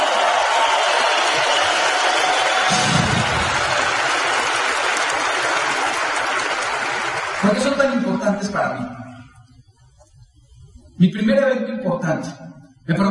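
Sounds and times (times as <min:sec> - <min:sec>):
large audience clapping: 0:00.0 - 0:08.5
speech: 0:07.4 - 0:09.0, 0:11.0 - 0:13.0.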